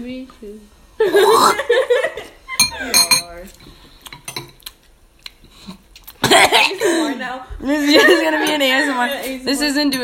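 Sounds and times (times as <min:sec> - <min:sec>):
speech: 0:00.0 - 0:02.0, 0:06.3 - 0:10.0
metal spoon clinking against a soup bowl: 0:02.6 - 0:03.4.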